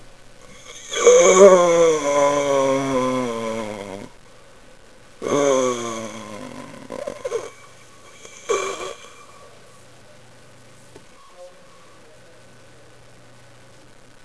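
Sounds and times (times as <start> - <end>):
zombie groan: 0.6 - 4.1, 5.2 - 9.4.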